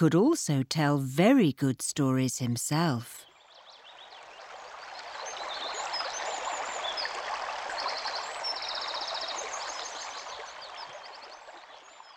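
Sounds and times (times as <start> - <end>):
speech: 0.0 - 3.3
river water rushing and burbling: 4.0 - 12.1.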